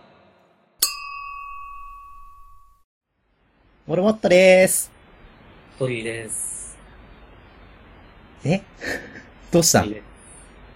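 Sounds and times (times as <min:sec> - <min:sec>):
glasses clinking in a toast: 0:00.8 - 0:02.8
speech: 0:03.9 - 0:04.9, 0:05.8 - 0:06.5, 0:08.4 - 0:10.1.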